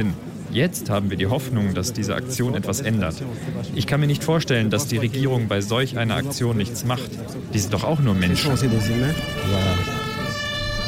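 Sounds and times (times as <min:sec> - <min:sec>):
speech: 0:00.0 - 0:10.0
murmur of voices: 0:00.0 - 0:10.8
ambulance siren: 0:07.6 - 0:10.8.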